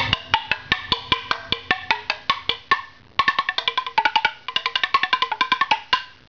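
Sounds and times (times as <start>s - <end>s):
turtle drums: 0.0s - 6.2s.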